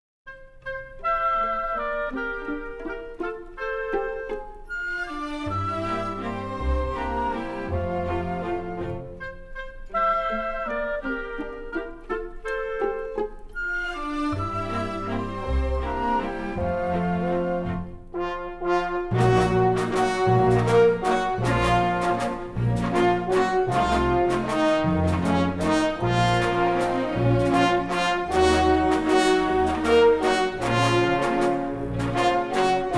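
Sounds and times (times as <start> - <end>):
symphonic orchestra playing: 0.6 - 32.9.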